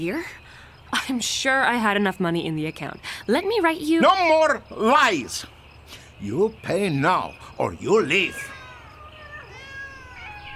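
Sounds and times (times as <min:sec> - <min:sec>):
speech: 0:00.0 - 0:08.6
several cats meowing: 0:07.6 - 0:10.5.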